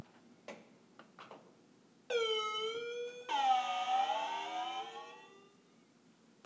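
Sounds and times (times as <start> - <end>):
doorbell: 2.1 - 5.6.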